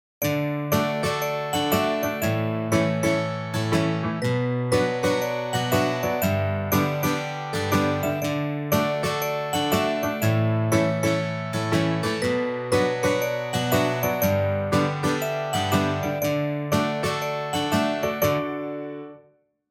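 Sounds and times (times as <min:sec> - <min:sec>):
playful cheerful background music: 0:00.2 - 0:19.0.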